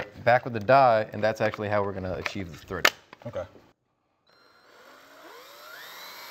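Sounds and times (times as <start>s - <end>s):
speech: 0.2s - 3.6s
power drill drilling holes: 4.3s - 6.3s.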